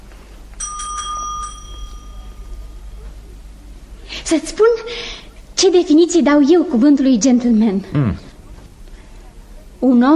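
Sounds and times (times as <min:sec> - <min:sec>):
small hand bell ringing to call a servant: 0:00.6 - 0:02.9
speech: 0:04.3 - 0:08.3, 0:09.8 - 0:10.1.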